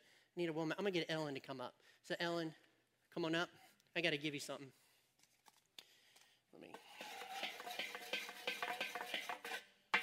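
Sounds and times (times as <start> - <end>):
speech: 0.4 - 4.8, 6.5 - 7.1
spoon stirring a pot: 6.8 - 10.0.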